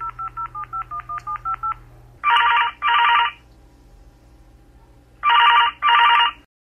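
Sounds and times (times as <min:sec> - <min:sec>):
telephone keypad dialing beeps: 0:00.0 - 0:01.8
telephone ringing in a double-burst pattern: 0:00.0 - 0:03.4, 0:05.2 - 0:06.4.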